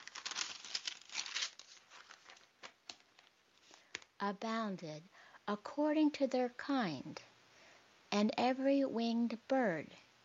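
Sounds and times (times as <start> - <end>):
book page being turned: 0.0 - 4.1
speech: 4.2 - 7.3, 8.1 - 10.0.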